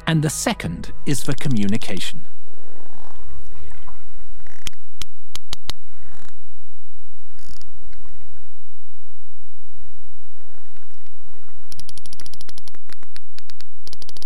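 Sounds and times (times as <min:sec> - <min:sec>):
low rumbling underwater ocean background: 0:00.0 - 0:12.0
speech: 0:00.1 - 0:02.3
sperm whale clicks recorded underwater by hydrophone: 0:01.1 - 0:02.0, 0:02.6 - 0:06.4, 0:07.2 - 0:08.5, 0:09.8 - 0:14.2.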